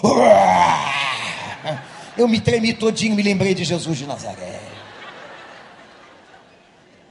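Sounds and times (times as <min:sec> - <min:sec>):
man's voice imitating the yawn of a lion: 0:00.0 - 0:01.5
laughter: 0:00.8 - 0:07.0
speech: 0:02.2 - 0:04.7.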